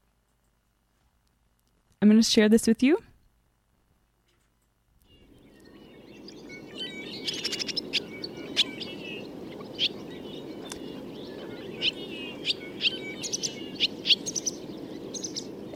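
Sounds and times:
soft low hiss: 0.0 - 15.7
speech: 2.0 - 3.1
barn swallow twittering: 5.0 - 15.7.

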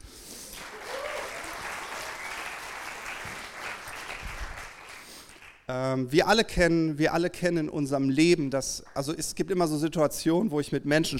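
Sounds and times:
audience clapping for a volunteer: 0.4 - 5.7
speech: 5.7 - 11.1.

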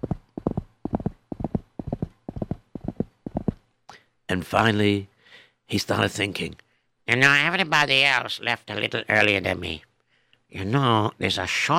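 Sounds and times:
galloping horse hooves: 0.0 - 3.6
speech: 4.3 - 5.1, 5.7 - 9.9, 10.5 - 11.7.

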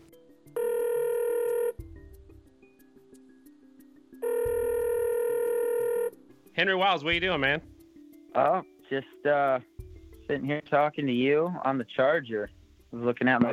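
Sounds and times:
telephone ringback tone on an outgoing call: 0.6 - 1.8, 4.2 - 6.2
speech: 6.6 - 7.7, 8.4 - 13.5.

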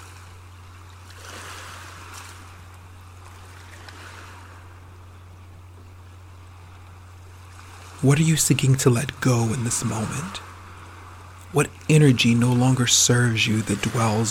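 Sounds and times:
low electrical hum: 0.0 - 14.2
ocean waves washing onto the shore: 0.0 - 14.2
speech: 8.0 - 10.5, 11.5 - 14.2.

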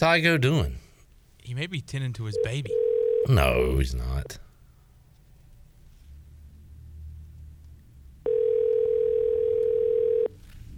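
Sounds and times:
speech: 0.0 - 0.8, 1.5 - 4.4
ringback tone from an outgoing phone call: 2.4 - 3.4, 8.3 - 10.3.

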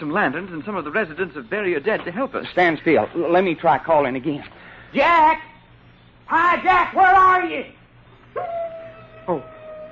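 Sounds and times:
speech: 0.0 - 5.5, 6.3 - 7.8, 9.3 - 9.5
faint hum: 0.0 - 9.9
wolf howling: 8.3 - 9.9.

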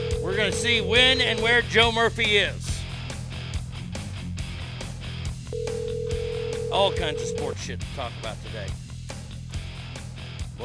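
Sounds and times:
phone ringback tone on an outgoing call: 0.0 - 1.6, 5.5 - 7.6
continuous music bed: 0.0 - 10.6
speech: 0.4 - 2.7, 6.7 - 8.8.

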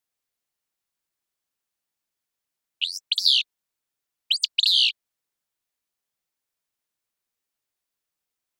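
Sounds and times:
Willow flycatcher song: 2.8 - 3.5, 4.3 - 5.0.

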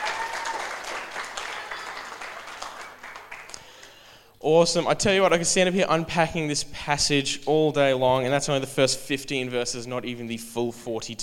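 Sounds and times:
crowd applauding: 0.0 - 4.0
speech: 4.4 - 11.2.

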